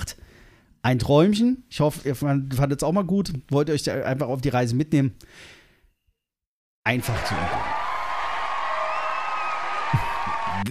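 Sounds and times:
speech: 0.8 - 5.6, 6.8 - 7.7
audience cheers and whoops: 7.0 - 10.6
crowd applauding: 7.0 - 10.6.

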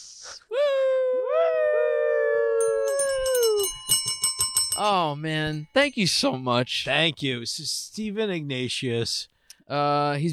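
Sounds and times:
speech: 0.0 - 0.6, 4.8 - 10.3
person howling like a wolf: 0.7 - 3.7.

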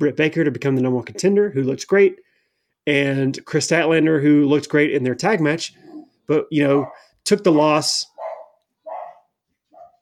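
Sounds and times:
speech: 0.0 - 2.2, 2.8 - 8.1
dog barking: 6.7 - 7.1, 8.1 - 10.0.

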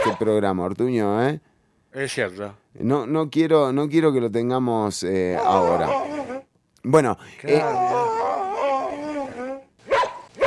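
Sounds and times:
dog yelping: 0.0 - 0.3, 5.3 - 6.5, 7.5 - 10.4
speech: 0.2 - 6.2, 6.8 - 8.0
dog whimpering howl: 5.3 - 6.5, 7.5 - 9.7.

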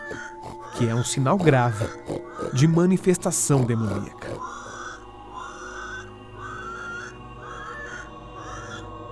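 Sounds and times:
low rumbling pig grunt: 0.0 - 5.0
pigs squealing loudly and shrilly: 0.0 - 8.9
speech: 0.1 - 4.2.

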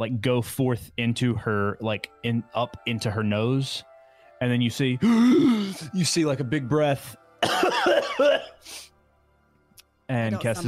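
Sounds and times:
speech: 0.0 - 8.9, 10.1 - 10.6
deep throaty smoker's cough performed by a person's voice: 5.0 - 5.9, 7.4 - 8.6.

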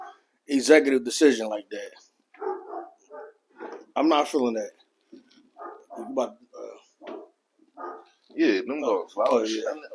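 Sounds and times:
dogs barking in short yelps: 0.0 - 0.3, 2.4 - 3.9, 5.6 - 6.4, 7.0 - 8.2
speech: 0.5 - 2.0, 4.0 - 4.8, 6.0 - 6.4, 8.4 - 9.9.

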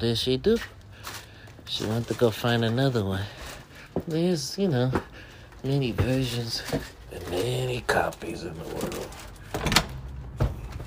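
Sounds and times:
speech: 0.0 - 3.4, 4.0 - 9.8
door opening with a short mechanical rattle and whir: 8.6 - 10.8.

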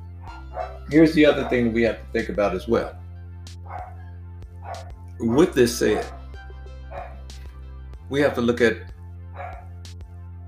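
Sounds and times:
dogs barking: 0.2 - 2.5, 3.6 - 5.0, 5.8 - 7.3, 9.3 - 9.8
speech: 0.9 - 3.0, 4.8 - 6.2, 8.1 - 8.9.

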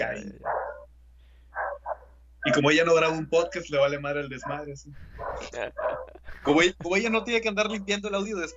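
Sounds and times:
speech: 0.1 - 0.6, 2.5 - 8.5
several dogs barking and fighting: 0.4 - 0.9, 1.5 - 2.1, 4.4 - 7.9
laughter: 5.1 - 8.0.

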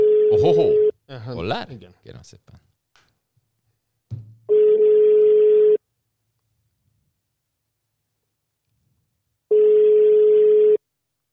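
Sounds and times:
phone line ringing tone: 0.0 - 0.9, 4.5 - 5.8, 9.5 - 10.8
speech: 0.3 - 2.6.

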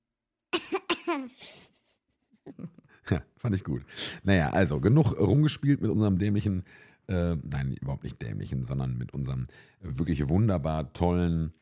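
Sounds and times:
coughs through chipmunk voice-changing effect on a mobile studio device: 0.6 - 1.8
speech: 1.1 - 1.7, 2.5 - 11.6.

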